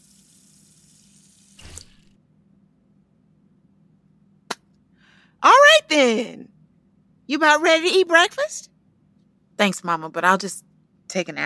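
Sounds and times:
water running from a tap: 0.0 - 2.1
speech: 6.0 - 6.5, 7.3 - 8.7, 9.6 - 11.4.

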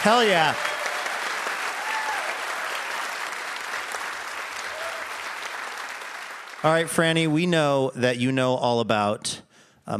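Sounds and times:
speech: 0.0 - 0.7, 6.6 - 9.9
audience applause: 0.0 - 7.4.

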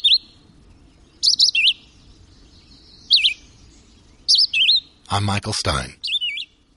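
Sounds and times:
red-eyed vireo singing: 1.2 - 4.9, 6.0 - 6.6
speech: 5.1 - 6.0.

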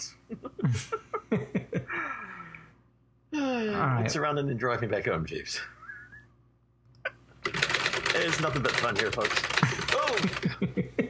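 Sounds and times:
speech: 0.0 - 1.4, 3.7 - 5.8, 8.2 - 11.0
laughter: 0.3 - 2.2, 9.5 - 11.0
faint whistling tone: 5.8 - 6.4
typewriter keys being struck: 7.4 - 10.5.

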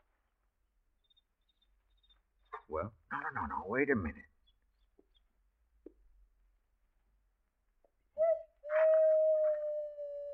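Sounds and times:
speech: 2.7 - 4.3
owl hooting: 8.2 - 10.3.

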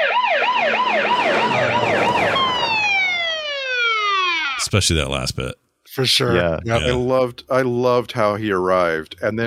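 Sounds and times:
late-1970s police car siren wailing: 0.0 - 4.6
speech: 4.6 - 9.4.

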